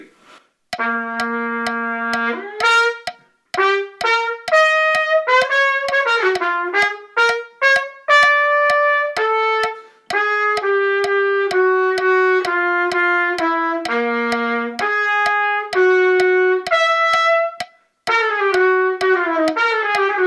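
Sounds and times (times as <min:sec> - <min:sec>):
jazz trumpet duet: 0:00.7 - 0:20.2.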